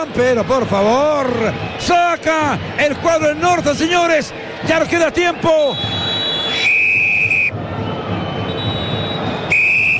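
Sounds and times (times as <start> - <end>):
speech: 0.0 - 6.0
steady roar of stadium crowd noise at a football match: 0.0 - 9.9
referee's whistle blasts ending the first half of a football match: 5.6 - 7.6, 8.4 - 9.9.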